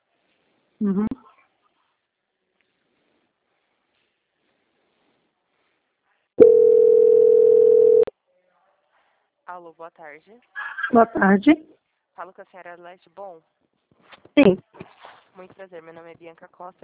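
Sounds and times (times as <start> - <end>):
speech: 0.8 - 1.3, 9.6 - 13.6, 14.4 - 14.7, 15.4 - 16.8
telephone line tone while a call to a bank is transferred: 6.4 - 8.1.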